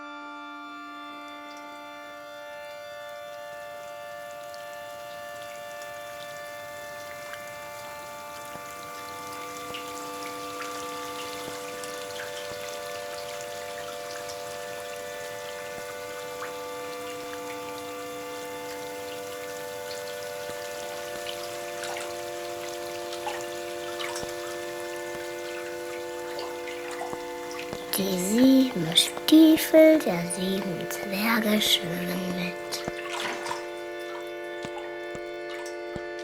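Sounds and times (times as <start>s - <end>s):
constant tonal hum: 0.0s - 36.2s
water dripping: 1.0s - 36.2s
speech: 28.0s - 32.9s.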